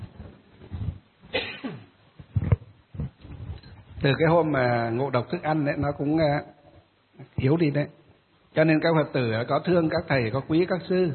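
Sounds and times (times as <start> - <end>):
harsh coughs: 1.3 - 1.9
speech: 4.0 - 6.6, 7.4 - 11.1.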